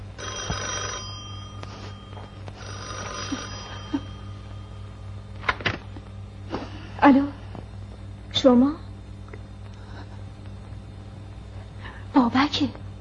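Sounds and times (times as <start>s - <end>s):
steady low hum: 0.0s - 12.9s
telephone bell ringing: 0.2s - 5.2s
speech: 7.1s - 7.3s, 8.4s - 8.8s.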